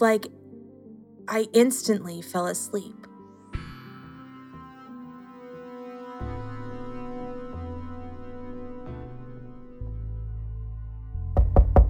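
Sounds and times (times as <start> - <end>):
speech: 0.0 - 0.4, 1.3 - 3.1
low sustained droning music: 0.0 - 11.8
heavy knocks on a door: 11.4 - 11.8.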